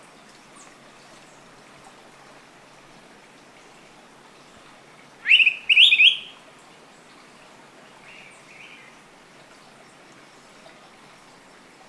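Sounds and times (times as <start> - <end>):
Araripe manakin call: 5.3 - 6.3.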